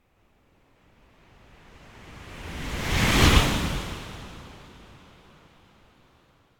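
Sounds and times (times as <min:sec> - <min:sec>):
strong fast deep ocean surf wave whoosh passing left to right: 0:02.0 - 0:04.8.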